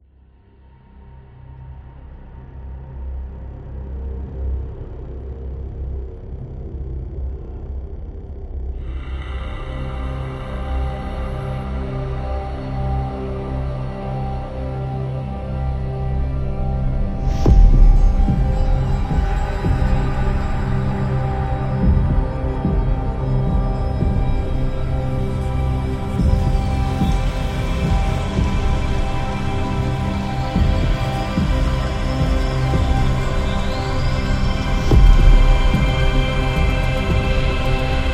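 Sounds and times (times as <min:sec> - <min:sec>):
ambient soundscape: 0:00.0 - 0:38.1.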